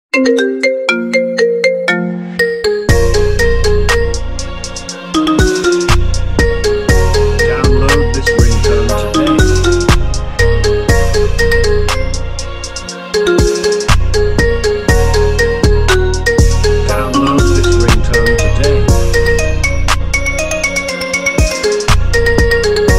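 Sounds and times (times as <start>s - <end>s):
marimba: 0.1s - 4.2s, 4.8s - 12.2s, 12.9s - 22.9s.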